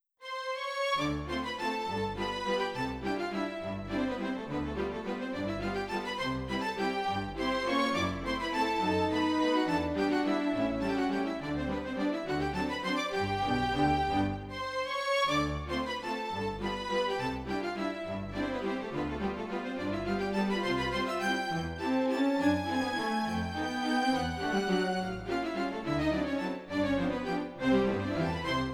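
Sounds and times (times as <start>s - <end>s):
strings on a Yamaha NP-15 WH digital piano: 0.6s - 28.7s.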